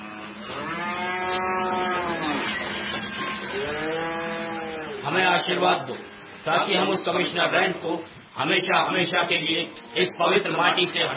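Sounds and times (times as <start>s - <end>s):
buffalo lowing: 0.0s - 6.8s
speech: 5.1s - 11.1s.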